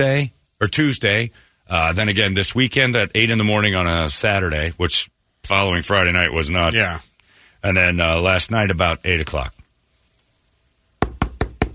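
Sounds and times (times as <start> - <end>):
speech: 0.0 - 9.6
knocking on a front door: 11.0 - 11.7.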